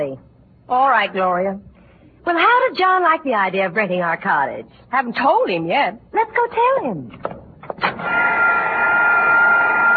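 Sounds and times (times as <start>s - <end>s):
speech: 0.0s - 7.3s, 8.0s - 9.1s
vacuum cleaner motor whine and whirr: 8.0s - 9.9s.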